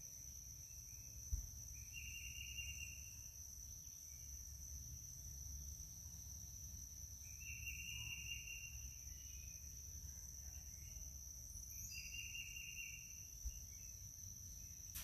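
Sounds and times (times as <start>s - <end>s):
high thin insect drone in a North Carolina forest on a summer morning: 0.0s - 15.0s
bird chirping in a North Carolina forest: 1.8s - 3.1s, 7.3s - 9.7s, 10.7s - 14.0s.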